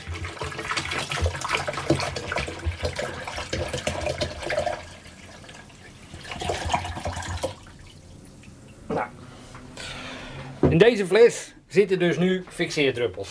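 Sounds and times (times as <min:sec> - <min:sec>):
photographic developer poured from one storage tank into another: 0:00.0 - 0:08.9
speech: 0:10.7 - 0:13.2.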